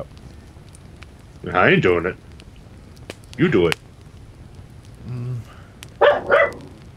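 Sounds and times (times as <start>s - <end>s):
low murmur: 0.0s - 6.9s
speech: 1.4s - 2.2s, 3.4s - 3.9s
dog barking: 6.0s - 6.8s.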